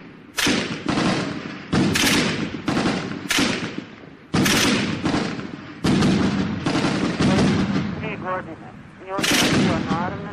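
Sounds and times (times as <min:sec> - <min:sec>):
gunfire bursts in Sarajevo: 0:00.0 - 0:08.3, 0:09.1 - 0:10.3
heavy explosive thuds from shelling and falling grenades in Sarajevo: 0:00.4 - 0:08.0.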